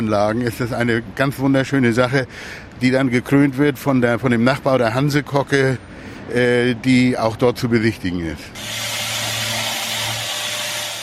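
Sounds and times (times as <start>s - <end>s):
speech: 0.0s - 8.9s
power sander sanding a new wooden deck: 8.6s - 11.0s.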